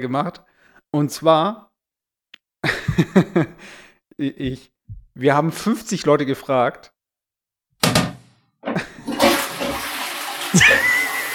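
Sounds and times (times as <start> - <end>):
speech: 0.0 - 1.7, 2.6 - 6.9, 10.6 - 10.9
toilet flushing: 8.8 - 11.3
laughter: 10.5 - 11.3.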